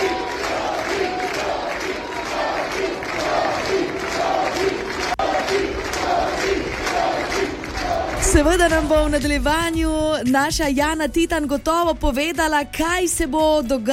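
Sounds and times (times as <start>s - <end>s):
large crowd cheering and chanting: 0.0s - 9.9s
speech: 8.4s - 13.9s.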